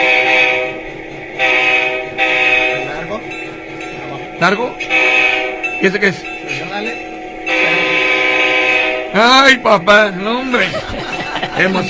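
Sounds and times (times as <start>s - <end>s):
train horn blowing: 0.0s - 3.3s, 4.2s - 9.6s
speech: 4.4s - 5.0s, 5.8s - 6.9s, 9.2s - 11.8s
laughter: 10.4s - 11.8s.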